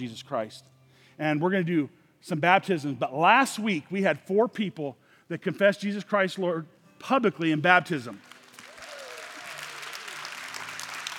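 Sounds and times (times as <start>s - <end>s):
speech: 0.0s - 8.3s
large crowd clapping in a roomy hall: 8.1s - 11.1s
faint voices and cheers: 8.7s - 10.4s.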